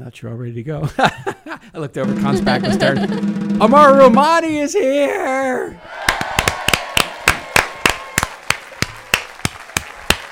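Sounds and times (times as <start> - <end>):
speech: 0.0 - 6.0
laughter: 0.8 - 3.4
rhythmic hand clapping: 6.0 - 10.3.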